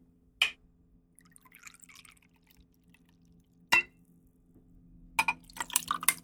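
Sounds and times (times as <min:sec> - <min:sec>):
liqueur poured into a glass: 0:01.2 - 0:03.5, 0:05.3 - 0:06.2.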